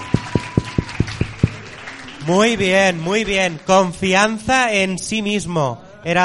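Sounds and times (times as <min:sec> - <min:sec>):
rhythmic clapping: 0:00.0 - 0:04.5
speech: 0:02.3 - 0:06.2.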